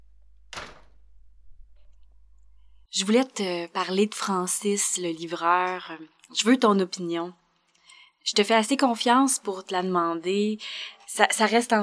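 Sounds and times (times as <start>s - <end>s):
brief rattle: 0.0s - 2.8s
door swinging shut with a solid thud: 0.0s - 2.8s
speech: 3.0s - 7.4s, 8.2s - 11.8s.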